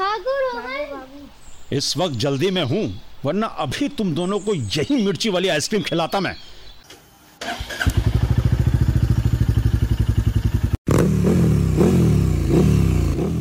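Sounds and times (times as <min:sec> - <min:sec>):
speech: 0:01.7 - 0:06.5
motorcycle engine idling and revving: 0:07.4 - 0:13.3.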